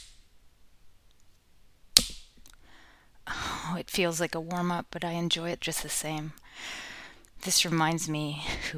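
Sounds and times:
slow hand slaps on skin: 2.0s - 2.3s
speech: 4.0s - 6.8s, 7.4s - 8.7s.

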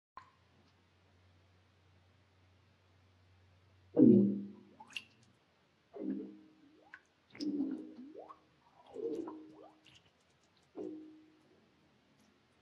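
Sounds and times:
fart underwater: 4.0s - 4.5s, 7.4s - 9.8s.

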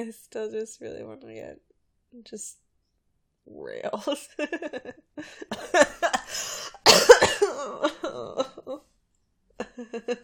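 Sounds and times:
speech: 0.0s - 2.6s, 3.4s - 6.6s, 7.6s - 8.9s, 9.7s - 10.2s
harsh coughing fit: 5.5s - 8.0s.

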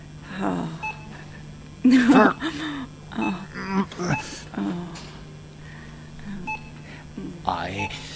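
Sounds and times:
store noise: 0.0s - 8.1s
voices: 0.2s - 8.1s
speech: 0.4s - 0.8s, 2.1s - 2.7s
short electronic beeps from a self-checkout scanner: 0.6s - 1.4s, 2.0s - 2.5s, 3.2s - 4.5s, 6.4s - 7.1s, 7.7s - 8.1s.

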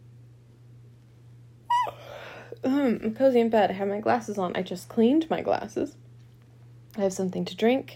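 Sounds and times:
faint low steady hum: 0.0s - 7.9s
person yawning: 1.7s - 2.6s
speech: 2.6s - 6.0s, 7.0s - 7.9s.

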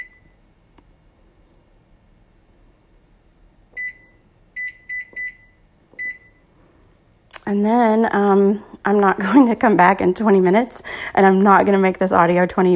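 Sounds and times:
high electronic microwave timer button beeps: 0.0s - 0.4s, 3.7s - 6.4s
quiet hum: 0.0s - 12.7s
speech: 7.5s - 12.7s.

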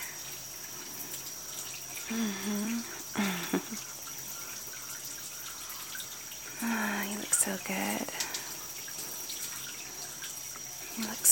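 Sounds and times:
running water rinsing a face and hair: 0.0s - 11.3s
speech: 2.1s - 2.9s.

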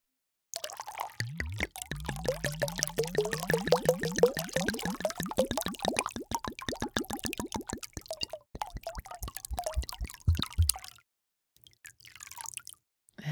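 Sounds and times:
wine glugging from a bottle into a big glass: 0.6s - 10.6s.

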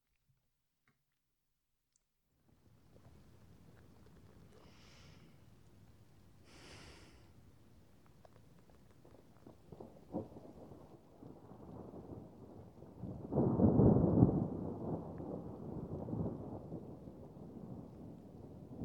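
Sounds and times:
steady rain at night in a forest: 3.0s - 18.8s
low roll of thunder: 9.7s - 18.8s.

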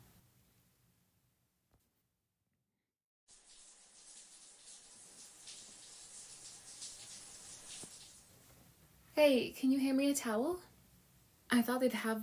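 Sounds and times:
hotel bathroom shower spraying water: 3.3s - 8.6s
speech: 9.2s - 10.7s, 11.5s - 12.2s.

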